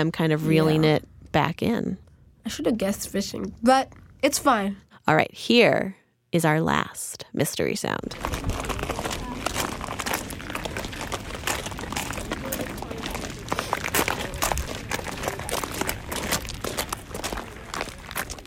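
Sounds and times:
speech: 0.0 - 8.6
group of people walking on a rock and pebble hiking path: 8.1 - 18.4.

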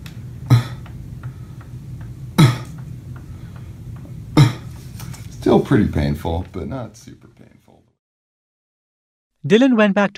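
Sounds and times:
person recovering from kidney donation surgery coughing as an exercise: 0.5 - 0.8, 2.4 - 2.8, 4.4 - 4.8
speech: 5.4 - 7.9, 9.4 - 10.1.

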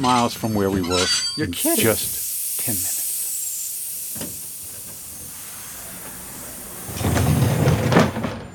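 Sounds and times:
speech: 0.0 - 3.0
steam train hissing as it pulls into a station: 1.5 - 8.5.

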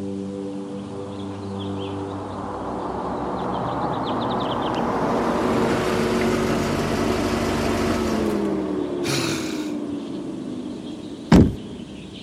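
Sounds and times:
steady engine hum: 0.0 - 12.2
car door slamming shut: 11.3 - 11.8.

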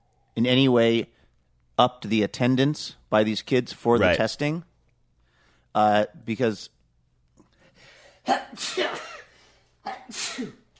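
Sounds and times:
speech: 0.4 - 1.2, 1.8 - 4.7, 5.8 - 6.8, 8.2 - 9.1, 9.8 - 10.6
loud sneezes: 8.2 - 10.7.

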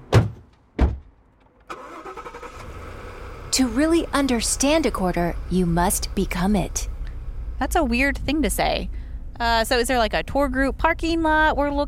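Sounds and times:
heavy thuds: 0.0 - 1.3
armored truck engine starting and idling: 1.3 - 11.8
speech: 3.6 - 6.9, 7.6 - 11.8.

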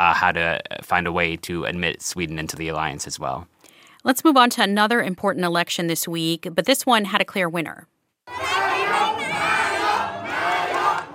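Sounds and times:
speech: 0.2 - 8.4
large crowd of party supporters chanting in unison in Thailand: 8.3 - 11.1.

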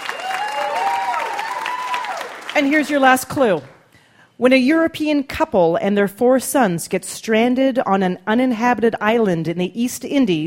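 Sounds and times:
audience clapping: 0.0 - 3.9
speech: 2.6 - 3.8, 4.4 - 10.4.

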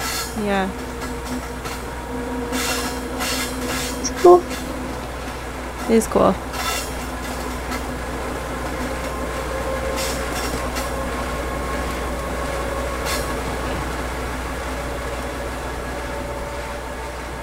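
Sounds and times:
sharp metallic squeals: 0.0 - 17.2
train passing on railroad track with wheels clattering: 0.0 - 17.4
speech: 0.4 - 2.3, 4.2 - 4.6, 5.9 - 6.5.

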